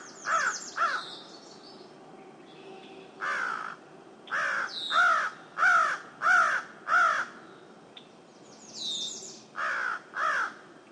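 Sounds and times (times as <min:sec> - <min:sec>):
crow giving loud rasping caws: 0:00.3 - 0:01.0, 0:03.2 - 0:07.4, 0:09.6 - 0:10.7.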